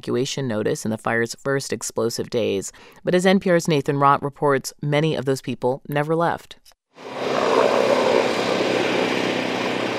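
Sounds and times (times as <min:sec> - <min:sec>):
speech: 0:00.0 - 0:07.2
helicopters dropping water on wildfire flames on a hillside: 0:07.0 - 0:09.9.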